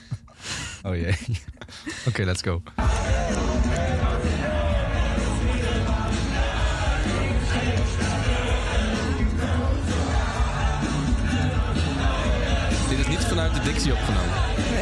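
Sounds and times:
laughter: 0:00.0 - 0:02.2
speech: 0:00.8 - 0:04.3, 0:13.4 - 0:14.7
large live festival crowd roaring: 0:02.8 - 0:12.9
booming live concert music: 0:02.8 - 0:14.7.

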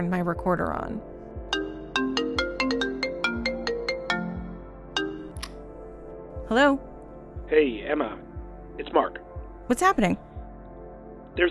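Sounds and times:
speech: 0:00.0 - 0:01.2, 0:06.5 - 0:06.9, 0:07.5 - 0:10.2
phone ringing with a melodic ringtone: 0:01.5 - 0:05.5.

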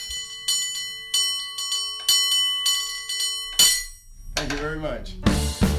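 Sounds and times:
bicycle bell ringing: 0:00.0 - 0:04.3
speech: 0:04.7 - 0:05.6.

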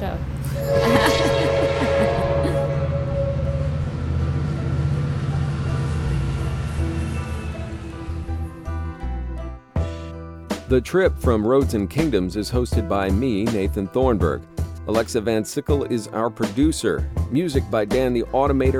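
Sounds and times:
train rumbling past: 0:00.0 - 0:09.6
speech: 0:10.7 - 0:18.7.

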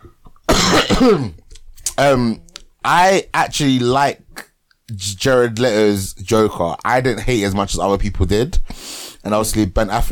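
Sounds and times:
person coughing harshly: 0:00.5 - 0:01.4
speech: 0:00.9 - 0:01.4, 0:02.0 - 0:10.1.

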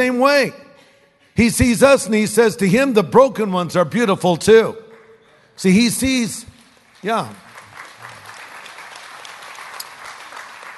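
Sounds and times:
speech: 0:00.0 - 0:00.6, 0:01.4 - 0:04.8, 0:05.6 - 0:07.4
scattered hand clapping from a modest crowd: 0:04.8 - 0:10.7.

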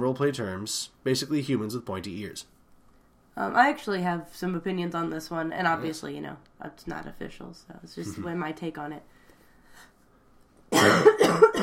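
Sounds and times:
speech: 0:00.1 - 0:02.6, 0:03.4 - 0:09.2, 0:10.8 - 0:11.6
person coughing harshly: 0:10.7 - 0:11.6.

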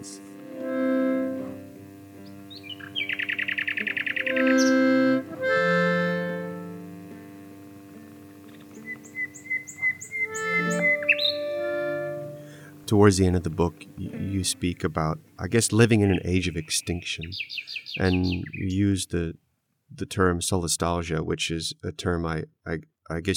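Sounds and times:
steady low hum: 0:00.0 - 0:20.4
nightingale singing: 0:02.2 - 0:06.6, 0:08.4 - 0:18.9
speech: 0:12.9 - 0:23.3.

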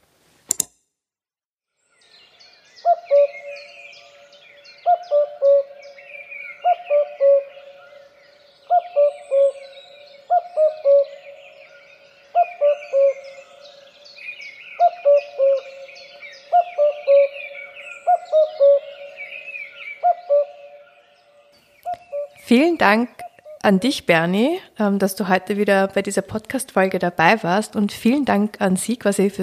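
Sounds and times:
small birds twittering: 0:01.8 - 0:24.5
cuckoo calling with three-note call: 0:02.3 - 0:24.0
speech: 0:22.5 - 0:29.4.

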